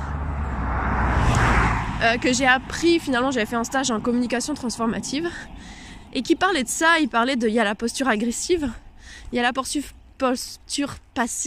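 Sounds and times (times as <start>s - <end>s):
car passing by: 0.0s - 6.2s
low car engine rumble: 0.0s - 10.3s
speech: 2.0s - 11.4s.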